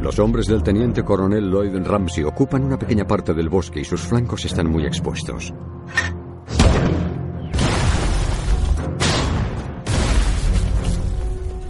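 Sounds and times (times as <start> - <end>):
speech: 0.0 - 6.1
heavy mortar and artillery fire in forest: 6.5 - 11.0.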